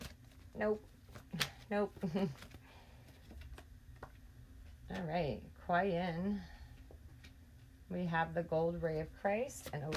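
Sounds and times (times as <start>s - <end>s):
tarot cards being shuffled and handled: 0.0s - 5.1s, 9.5s - 9.9s
speech: 0.6s - 2.6s, 4.9s - 6.6s, 7.9s - 9.9s.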